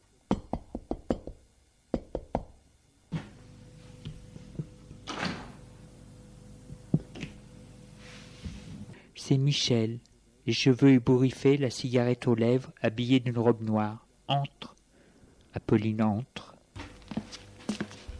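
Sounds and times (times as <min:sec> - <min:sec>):
soft room noise: 0:00.0 - 0:18.1
woman knocking on a wooden apartment door: 0:00.3 - 0:01.4
door opening with a low creak: 0:05.0 - 0:05.6
speech: 0:09.3 - 0:14.7, 0:15.6 - 0:16.5.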